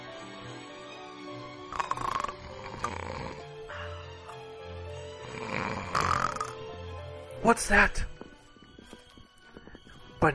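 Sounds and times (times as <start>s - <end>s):
loud rasping snores with a rattling throat sound: 0.0s - 4.2s, 4.9s - 6.9s
speech: 7.4s - 8.1s.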